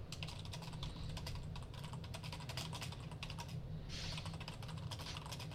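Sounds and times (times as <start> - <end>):
typing a short chat message on a computer keyboard: 0.1 - 5.5.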